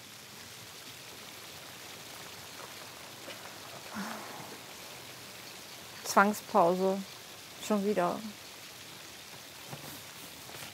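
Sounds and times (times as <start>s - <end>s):
steady rain falling: 0.0s - 10.7s
speech: 6.1s - 7.1s, 7.7s - 8.4s.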